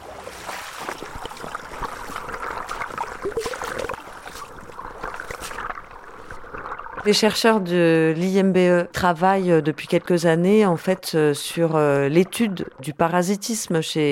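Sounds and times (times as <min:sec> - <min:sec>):
small polluted stream trickling and splashing: 0:00.0 - 0:08.7
speech: 0:07.0 - 0:14.0.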